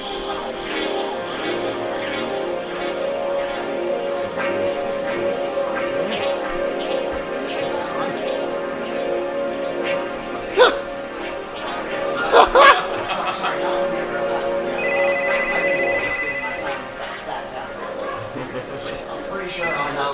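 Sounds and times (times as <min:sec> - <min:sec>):
people talking and laughing: 0:00.0 - 0:20.1
telephone ringing: 0:14.8 - 0:16.8.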